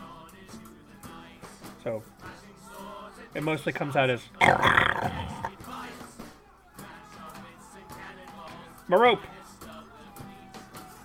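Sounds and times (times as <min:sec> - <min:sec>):
speech: 0:01.8 - 0:02.2, 0:03.3 - 0:05.6, 0:08.9 - 0:09.4
person imitating a boar's grunt: 0:04.4 - 0:05.5.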